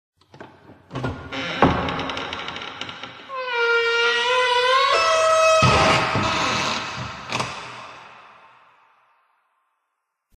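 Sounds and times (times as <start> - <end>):
door creaking: 0.3 - 8.0.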